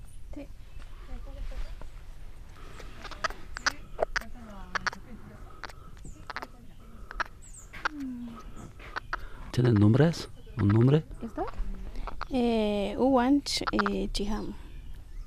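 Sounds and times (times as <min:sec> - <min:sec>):
speech: 0:00.4 - 0:00.6, 0:09.6 - 0:11.1, 0:12.3 - 0:14.6
confiscated tiny baby monkeys squeaking and chirping: 0:02.6 - 0:12.4, 0:13.5 - 0:14.3.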